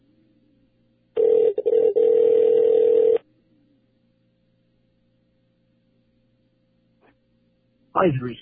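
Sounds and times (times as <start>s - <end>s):
telephone ring tone: 1.2s - 3.2s
speech: 8.0s - 8.4s.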